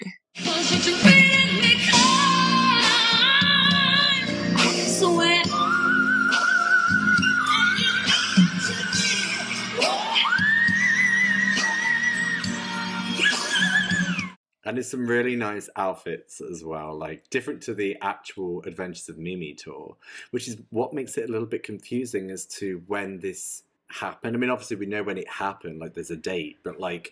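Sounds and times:
backing music at a live concert: 0.0 - 14.3
singer holding whistle-register notes at a live concert: 5.5 - 14.4
speech: 14.8 - 27.1.

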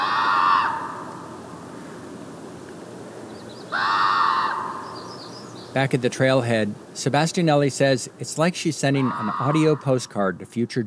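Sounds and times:
common raven croaking calls echoing over salt marsh: 0.0 - 1.4, 3.7 - 5.2, 8.8 - 10.1
steady hiss of open outdoor air: 0.0 - 10.8
speech: 5.8 - 10.8.

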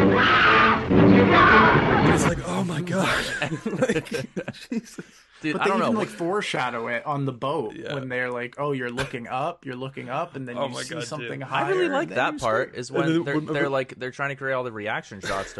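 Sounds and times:
person imitating the piercing scream of a woman in a film: 0.1 - 2.3
person chuckling: 2.5 - 6.3, 15.2 - 15.5
speech: 3.5 - 15.5.

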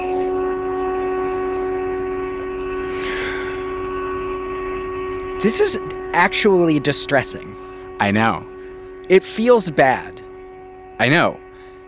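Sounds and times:
storm sirens wailing: 0.0 - 11.8
brief breathy rush of noise: 2.7 - 3.9
speech: 5.4 - 8.5, 9.1 - 10.2, 11.0 - 11.4.

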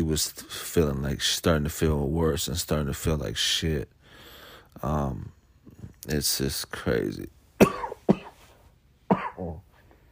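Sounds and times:
speech: 0.0 - 4.0, 4.7 - 5.4, 6.0 - 7.4
person coughing: 7.6 - 8.4, 9.1 - 9.7.

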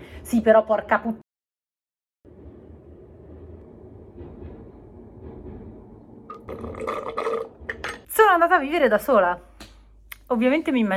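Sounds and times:
speech: 0.3 - 1.2, 8.2 - 9.5, 10.3 - 10.9
tram rumbling past: 2.3 - 8.2.

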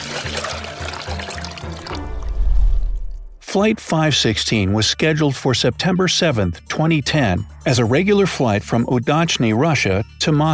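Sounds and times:
water poured into a glass: 0.0 - 3.2
speech: 3.5 - 10.5.

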